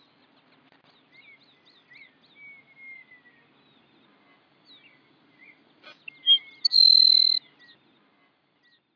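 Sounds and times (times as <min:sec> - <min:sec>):
Grassland Sparrow humeralis song with buzzy trill: 0:00.9 - 0:08.9
soft whistled bird calls: 0:01.1 - 0:03.8, 0:04.7 - 0:07.8.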